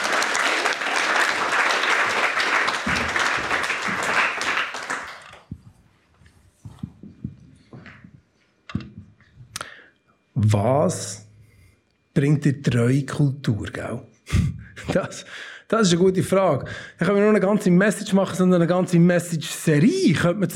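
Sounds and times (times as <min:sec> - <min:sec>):
crowd applauding with dense loud clapping: 0:00.0 - 0:05.5
speech: 0:10.5 - 0:11.2, 0:12.2 - 0:20.5.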